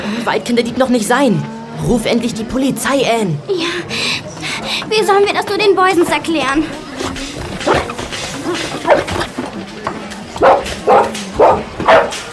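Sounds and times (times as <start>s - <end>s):
speech: 0.2s - 6.8s
dog barking: 8.5s - 9.3s, 10.4s - 12.2s.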